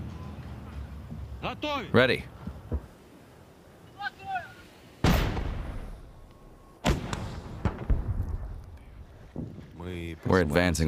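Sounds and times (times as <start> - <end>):
speech: 1.4 - 2.4, 10.3 - 10.8
heavy artillery booms on the front line near Kherson: 5.0 - 6.2, 6.8 - 9.6.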